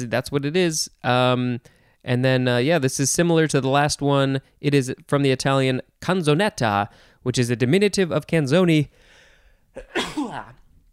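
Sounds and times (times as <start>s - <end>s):
speech: 0.0s - 9.0s, 9.8s - 10.6s
human sneeze: 9.8s - 10.6s.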